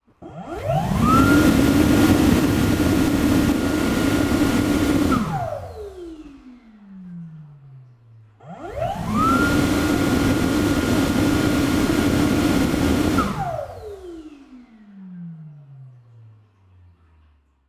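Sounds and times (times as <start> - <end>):
Dyson Airblade hand dryer blowing: 0.4 - 6.4, 8.6 - 14.5.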